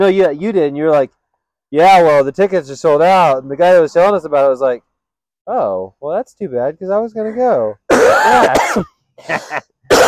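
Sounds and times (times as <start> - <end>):
speech: 0.0 - 4.9, 5.5 - 10.0
person coughing: 7.9 - 10.0.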